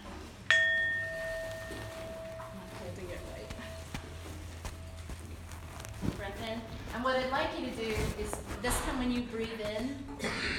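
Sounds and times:
meditation bell struck to begin a group art-and-meditation healing session: 0.5s - 5.7s
speech: 6.4s - 10.5s.

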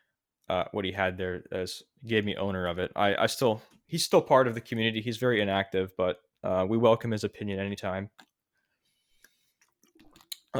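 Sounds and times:
speech: 0.5s - 8.3s
sipping water with mouth clicks and slurps: 9.1s - 10.5s
swallow: 9.2s - 10.5s.

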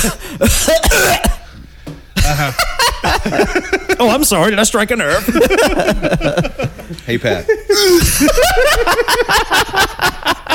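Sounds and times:
speech: 0.0s - 1.3s, 2.4s - 3.4s, 4.1s - 10.2s
person coughing harshly into microphone: 0.0s - 1.6s
laughter: 2.2s - 4.2s, 5.0s - 10.5s.

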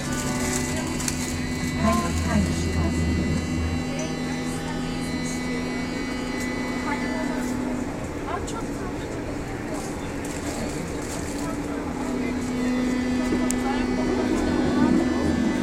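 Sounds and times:
deep drone: 0.0s - 15.6s
subway train rumble and hum inside a U-Bahn train: 0.0s - 15.6s
voices talking inside a subway train: 0.0s - 15.6s.

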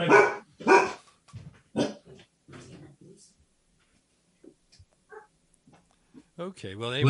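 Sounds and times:
pet dog barking: 0.0s - 1.0s, 1.7s - 2.1s, 5.1s - 5.3s
speech: 6.4s - 7.0s.

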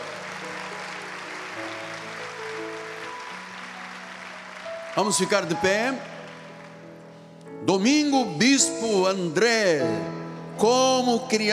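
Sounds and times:
large church audience applauding: 0.0s - 7.4s
speech: 5.0s - 6.2s, 7.7s - 11.5s.

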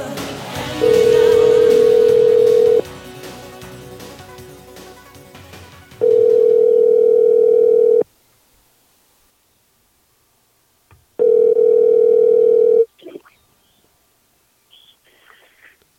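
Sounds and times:
telephone dial tone while placing a call: 1.6s - 2.8s, 6.0s - 8.0s, 11.2s - 12.9s.

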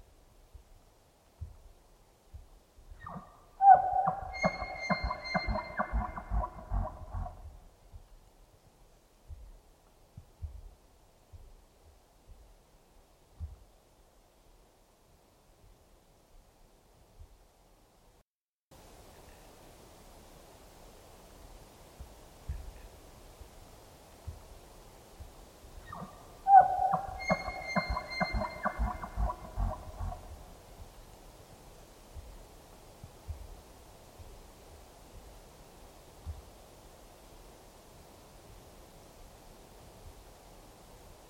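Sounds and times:
steady hiss: 0.0s - 3.6s, 6.4s - 18.2s, 18.8s - 27.8s, 28.4s - 41.2s
wash of river in a rainforest valley: 2.4s - 8.2s, 25.8s - 30.9s
Roosevelt elk bugling with rising whistle and grunting chuckles: 3.0s - 7.4s, 25.9s - 30.4s.

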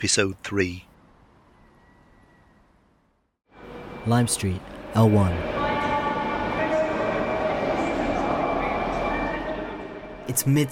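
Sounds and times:
speech: 0.0s - 0.9s, 4.0s - 5.6s, 10.3s - 10.7s
train idling at a station platform during a heat wave: 3.5s - 10.7s
indistinct voices murmuring at a station platform: 4.8s - 10.1s.

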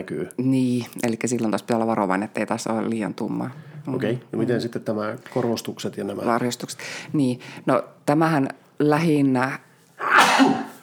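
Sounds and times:
speech: 0.0s - 9.7s, 10.4s - 10.7s
person sneezing: 10.0s - 10.8s.

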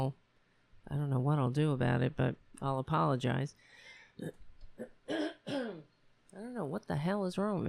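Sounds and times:
speech: 0.0s - 0.2s, 0.9s - 5.6s, 6.3s - 7.6s
person with a frog in their throat clearing it: 4.2s - 5.9s.

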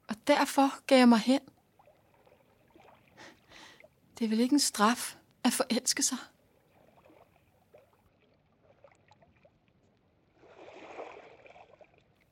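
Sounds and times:
speech: 0.3s - 1.5s, 4.2s - 6.3s
soft water lapping and sloshing: 1.5s - 4.2s, 6.3s - 12.3s
small irregular water splashes: 1.6s - 4.0s, 6.5s - 12.3s
broad rush of water: 10.4s - 12.3s.

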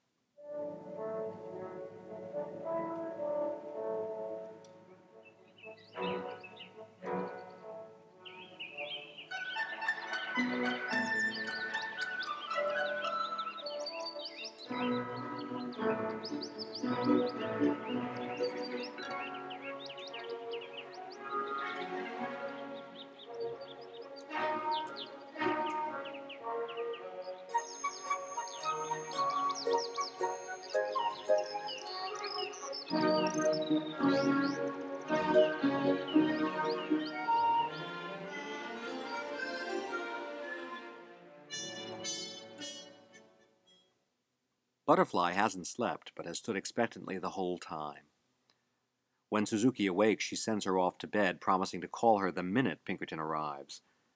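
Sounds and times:
orchestral music from an opera interlude: 0.4s - 43.2s
speech: 44.9s - 48.1s, 49.3s - 53.9s.

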